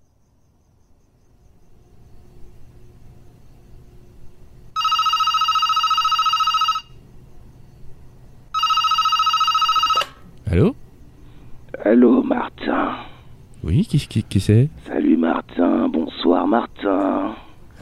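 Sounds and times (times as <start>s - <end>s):
faint low hum: 0.0s - 17.8s
telephone ringing on an outgoing call: 4.8s - 7.0s, 8.6s - 10.2s
speech: 13.9s - 17.4s.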